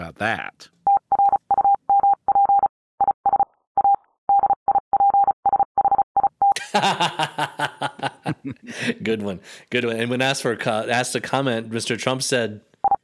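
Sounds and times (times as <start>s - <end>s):
speech: 0.1s - 0.8s, 6.8s - 7.7s, 8.4s - 12.7s
morse code beeps: 0.9s - 6.6s
laughter: 6.6s - 9.1s.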